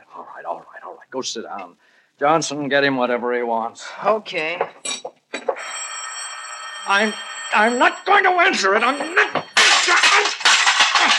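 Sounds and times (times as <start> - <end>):
speech: 0.4 - 5.1, 6.9 - 9.4
telephone being smashed: 9.4 - 11.1.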